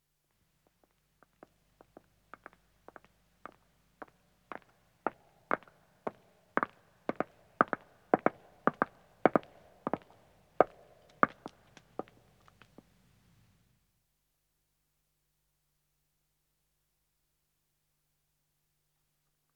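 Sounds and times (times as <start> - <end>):
two women's footsteps on stone approaching: 0.6 - 12.9.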